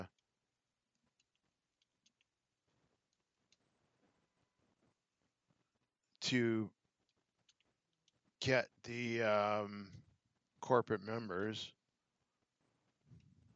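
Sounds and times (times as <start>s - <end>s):
typing on a computer keyboard: 0.9s - 2.3s
speech: 6.2s - 6.8s, 8.4s - 10.0s, 10.6s - 11.8s.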